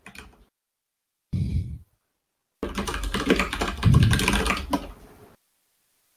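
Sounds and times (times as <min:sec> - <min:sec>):
computer keyboard typing during an online call: 0:00.0 - 0:00.4, 0:02.6 - 0:05.0.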